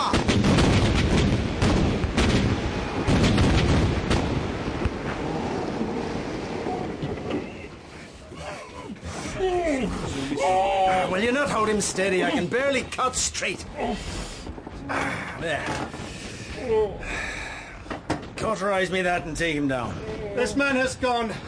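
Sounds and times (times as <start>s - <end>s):
cannon fire from a ship's gun crew in a sea battle: 0.0s - 7.2s
sea waves: 4.0s - 12.5s
speech: 11.4s - 14.2s, 14.9s - 16.0s, 16.6s - 17.4s, 18.4s - 21.4s.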